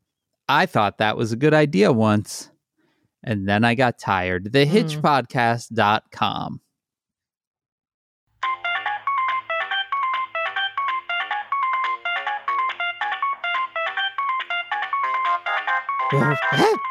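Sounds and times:
speech: 0.5s - 2.5s, 3.2s - 6.6s, 16.1s - 16.8s
mobile phone ringing in a pants pocket: 8.4s - 16.8s.

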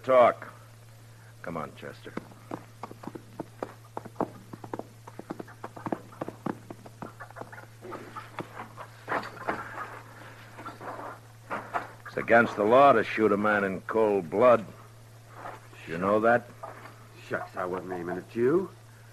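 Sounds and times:
speech: 0.0s - 0.6s, 1.4s - 2.3s, 12.3s - 14.8s, 16.0s - 16.6s, 17.3s - 18.8s
constant low electrical hum: 0.0s - 19.1s
horse hooves clip-clopping: 1.9s - 12.0s.

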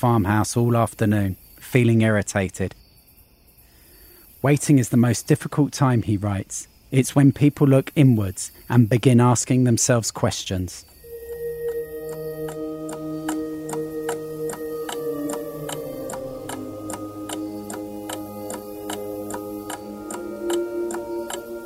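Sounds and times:
speech: 0.0s - 2.8s, 4.4s - 10.9s
sustained low tonal drone with shifting pitches: 11.0s - 21.6s
clock ticking: 11.3s - 21.6s.

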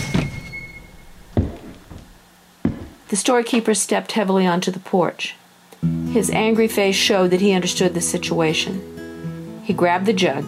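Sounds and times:
store screen door slamming against wooden siding: 0.0s - 2.1s
speech: 3.1s - 8.9s, 9.7s - 10.4s.

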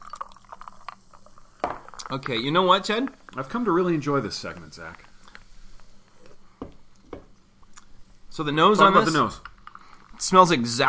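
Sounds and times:
drink pouring over ice: 0.0s - 2.5s
speech: 1.6s - 5.1s, 8.4s - 9.5s, 10.2s - 10.8s.

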